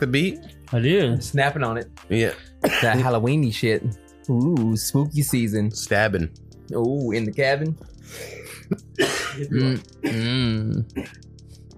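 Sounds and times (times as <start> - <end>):
speech: 0.0 - 11.7
person coughing and clearing throat: 2.6 - 3.1, 8.4 - 11.2
person moaning in a strained voice: 9.5 - 11.1.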